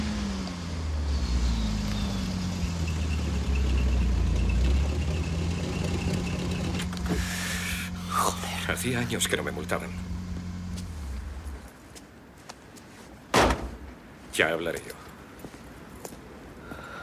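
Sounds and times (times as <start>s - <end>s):
sports car engine rumble and idling hum: 0.7s - 11.8s
speech: 8.7s - 10.2s, 14.4s - 15.0s.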